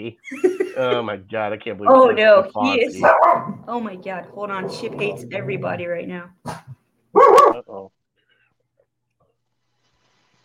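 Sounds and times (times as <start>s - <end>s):
laughter: 0.0s - 1.2s
speech: 0.0s - 6.7s, 7.6s - 8.0s
dog barking: 3.0s - 3.6s, 6.5s - 7.6s.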